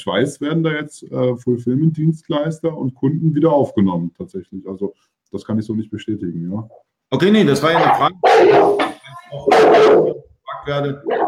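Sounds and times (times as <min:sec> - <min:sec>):
speech: 0:00.0 - 0:11.2
large dog barking: 0:07.6 - 0:10.3, 0:11.0 - 0:11.2.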